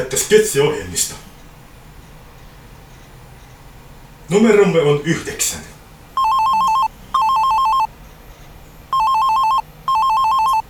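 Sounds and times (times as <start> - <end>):
speech: 0.2 - 1.3, 4.3 - 5.8
telephone ringing with a loud warbling electronic tone: 6.2 - 7.9, 8.9 - 10.6.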